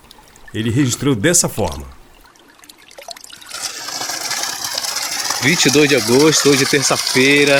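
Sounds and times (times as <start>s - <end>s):
water flowing from a solar-powered pump outlet: 0.0s - 7.5s
speech: 0.5s - 2.0s, 5.4s - 7.5s.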